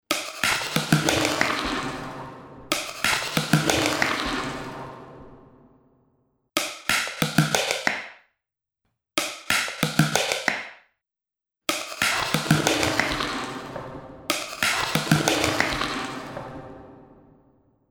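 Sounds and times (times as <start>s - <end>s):
drumsticks percussion for dance: 0.1s - 4.8s, 6.6s - 8.2s, 9.2s - 10.8s, 11.7s - 16.8s.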